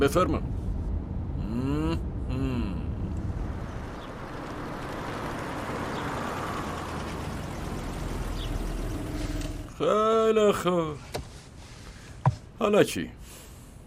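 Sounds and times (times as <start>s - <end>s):
speech: 0.0s - 0.6s, 9.8s - 11.2s, 12.6s - 13.4s
rolling road noise: 0.0s - 13.8s
car engine humming while pulling into a parking spot: 0.7s - 9.9s.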